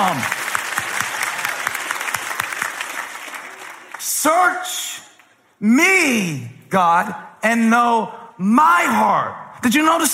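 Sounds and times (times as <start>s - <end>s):
speech: 0.0s - 0.4s, 4.2s - 4.9s, 5.6s - 10.1s
audience clapping: 0.0s - 5.5s.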